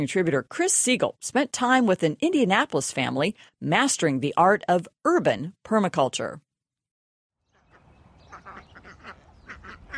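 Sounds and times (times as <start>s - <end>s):
speech: 0.0s - 6.4s
runner ducks quacking: 7.5s - 9.9s.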